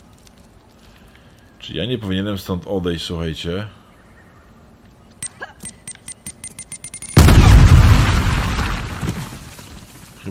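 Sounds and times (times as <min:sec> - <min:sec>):
speech: 0:01.6 - 0:03.8
grenade sharp high clicking ticks in a video game: 0:05.2 - 0:07.2
grenade explosion in a video game with deep rumbling boom: 0:07.2 - 0:09.5.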